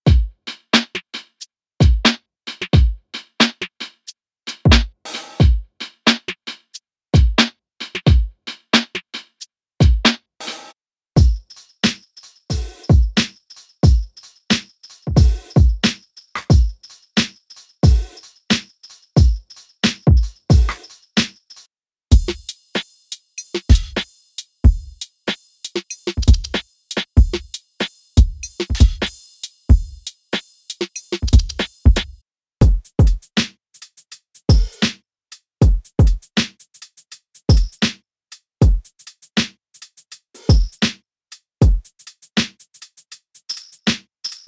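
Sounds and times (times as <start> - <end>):
lo-fi drums: 0.1 - 1.0, 1.8 - 3.6, 4.6 - 6.3, 7.2 - 9.0, 9.8 - 10.1, 11.2 - 21.3, 22.1 - 25.1, 25.7 - 33.5, 34.5 - 35.0, 35.6 - 36.6, 37.5 - 38.0, 38.6 - 39.5, 40.4 - 41.0, 41.6 - 42.6, 43.8 - 44.4.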